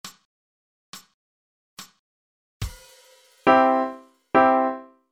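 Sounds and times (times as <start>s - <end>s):
triads played: 2.6s - 4.7s.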